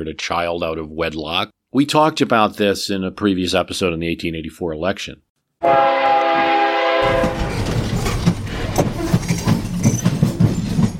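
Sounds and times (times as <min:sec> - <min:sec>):
speech: 0:00.0 - 0:06.0
loud train horn blaring: 0:05.6 - 0:07.7
rail cars rumbling past with clickety-clack clatter: 0:05.7 - 0:10.9.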